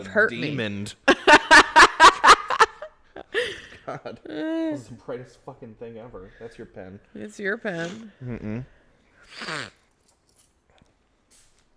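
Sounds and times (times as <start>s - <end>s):
speech: 0.0s - 1.1s, 3.9s - 9.8s
laughter: 1.1s - 3.8s
baby boy sneezing: 7.8s - 8.1s, 9.3s - 9.8s.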